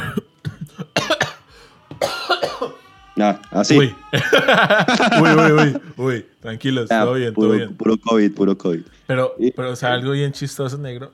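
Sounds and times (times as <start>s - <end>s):
person stifling a cough: 0.0s - 1.4s, 2.0s - 2.8s
speech: 3.2s - 11.1s
laughter: 4.0s - 6.1s.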